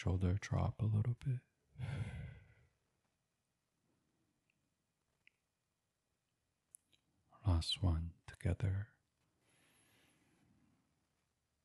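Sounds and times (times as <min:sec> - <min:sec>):
speech: 0:00.0 - 0:02.2, 0:07.6 - 0:08.9
deep breath in through nose and out through mouth: 0:01.8 - 0:02.7.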